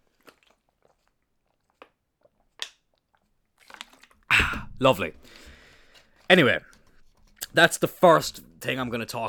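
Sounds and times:
person sipping a drink: 0.2s - 6.2s
speech: 4.8s - 5.5s, 6.3s - 6.7s, 7.5s - 9.2s.

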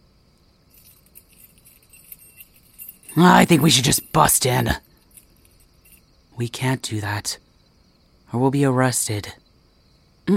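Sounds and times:
keys jangling on a keyring while opening a church door: 0.7s - 6.1s
speech: 3.2s - 4.9s, 6.4s - 7.4s, 8.3s - 9.4s.

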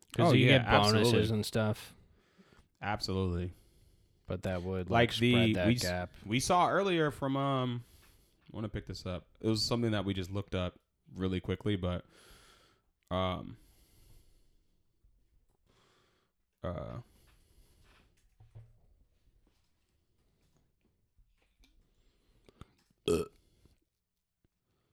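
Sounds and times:
faint talk: 0.2s - 1.4s, 5.2s - 6.0s
speech: 0.2s - 2.0s, 2.8s - 3.6s, 4.3s - 7.9s, 8.5s - 12.3s, 13.1s - 13.6s, 16.6s - 17.1s, 23.1s - 23.4s
loud belches: 23.1s - 23.4s.

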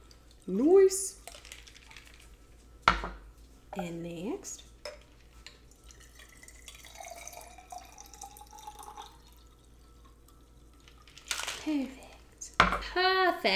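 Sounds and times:
speech: 0.5s - 1.2s, 3.8s - 4.7s, 11.6s - 12.0s, 13.0s - 13.5s
strained drink trickling and dripping into a glass: 5.5s - 11.1s.

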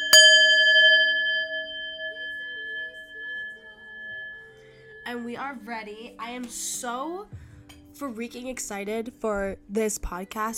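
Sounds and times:
single bell struck: 0.0s - 6.0s
speech: 5.0s - 10.5s.

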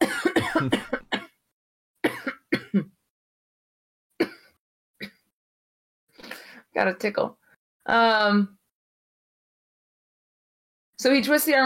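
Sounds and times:
person coughing harshly: 0.0s - 1.3s, 2.0s - 2.9s, 4.2s - 5.2s
throat clearing: 0.2s - 1.0s
speech: 6.8s - 8.6s, 11.0s - 11.6s.

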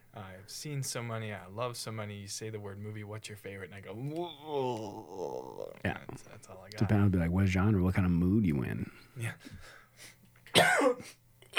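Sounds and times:
speech: 0.5s - 11.5s
faint throaty murmurs: 3.8s - 7.6s
person coughing: 10.5s - 11.5s.

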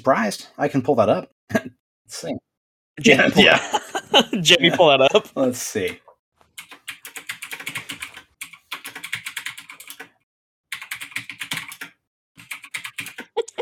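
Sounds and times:
speech: 0.0s - 6.0s
laughter: 3.0s - 5.4s
clicky typing on a mechanical keyboard: 6.6s - 13.4s.

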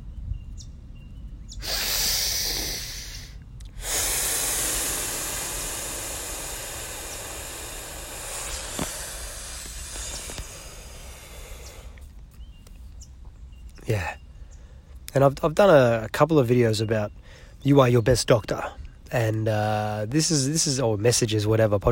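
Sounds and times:
slow deep breathing in and out: 1.6s - 12.6s, 17.1s - 17.6s
speech: 15.2s - 21.9s.

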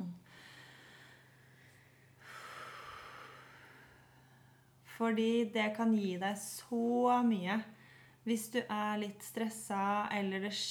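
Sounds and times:
slow deep breath inhaling and exhaling: 0.2s - 4.8s
speech: 5.0s - 10.6s.

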